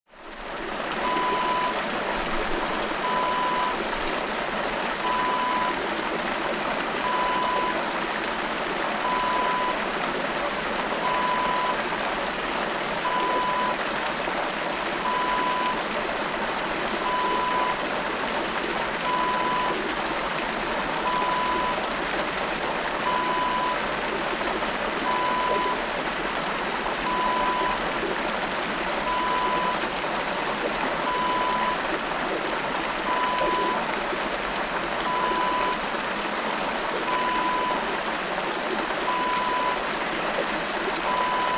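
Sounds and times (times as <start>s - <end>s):
water fountain: 0.1s - 41.5s.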